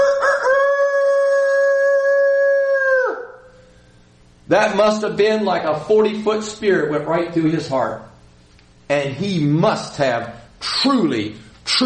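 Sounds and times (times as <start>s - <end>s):
rooster crowing: 0.0s - 3.6s
speech: 4.5s - 8.1s, 8.9s - 11.8s.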